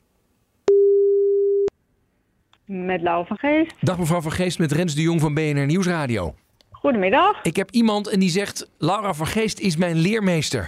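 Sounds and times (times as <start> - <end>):
telephone call being placed to a mobile number: 0.7 - 1.7
speech: 2.7 - 10.6.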